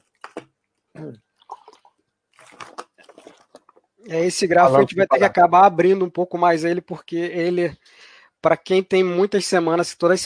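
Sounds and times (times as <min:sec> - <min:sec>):
person sipping and gulping water: 0:00.0 - 0:04.0
speech: 0:01.0 - 0:01.3, 0:04.0 - 0:10.2.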